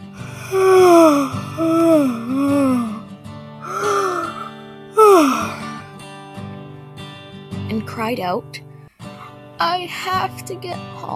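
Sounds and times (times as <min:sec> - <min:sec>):
person acting out an exaggerated yawn: 0:00.2 - 0:03.0, 0:03.6 - 0:05.8
speech: 0:08.0 - 0:08.6, 0:09.6 - 0:11.1.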